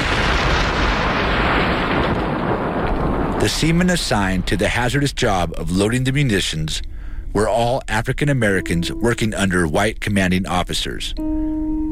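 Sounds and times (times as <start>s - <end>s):
loud sustained explosive roar with rumbling and crackling: 0.0s - 6.4s
speech: 3.4s - 11.5s.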